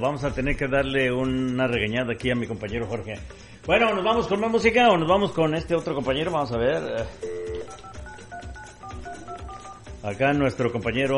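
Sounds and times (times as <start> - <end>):
speech: 0.0 - 7.8, 10.0 - 11.1
rhythmic low thumps: 0.0 - 11.1
telephone dialing tones for a call: 7.1 - 10.0.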